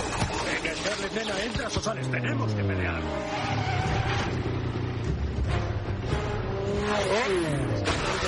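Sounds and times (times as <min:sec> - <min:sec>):
car engines revving in a chase scene: 0:00.1 - 0:08.2
speech: 0:01.1 - 0:04.2, 0:06.9 - 0:08.2.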